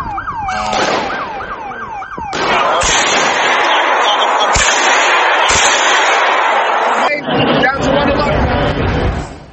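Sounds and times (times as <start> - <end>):
rising wailing siren-like sound: 0.0 - 7.2
loud chaotic noise: 0.4 - 9.5
people shouting as they run away: 0.5 - 7.2
gunshots fired into the air by a man at a church front door: 0.6 - 1.6, 2.2 - 7.6.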